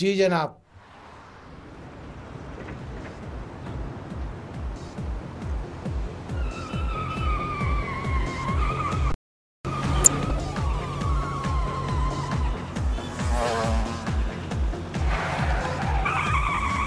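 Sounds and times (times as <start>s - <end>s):
speech: 0.0s - 0.6s
car tires skidding and screeching under hard braking: 0.8s - 16.8s
rumbling car engine: 1.4s - 6.4s, 11.6s - 16.8s.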